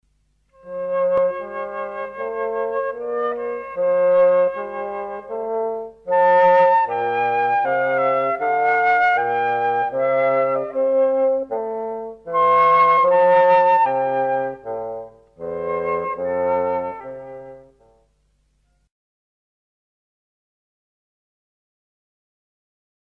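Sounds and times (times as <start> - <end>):
bassoon: 0.5 - 18.9
transverse flute: 0.6 - 18.0.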